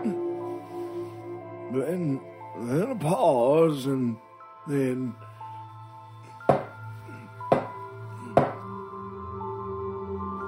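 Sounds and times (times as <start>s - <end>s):
speech: 1.7s - 5.3s
empty beer bottle banged on a table: 6.5s - 6.7s, 7.5s - 7.8s, 8.4s - 8.6s.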